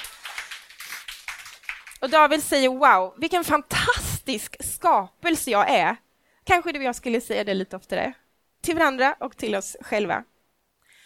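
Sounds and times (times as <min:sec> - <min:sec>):
light scattered applause from an audience: 0:00.0 - 0:02.3
speech: 0:02.0 - 0:10.3.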